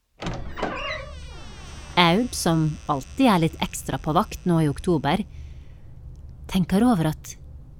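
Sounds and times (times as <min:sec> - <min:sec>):
office door creaking open: 0:00.2 - 0:05.0
speech: 0:02.1 - 0:05.4, 0:06.5 - 0:07.4.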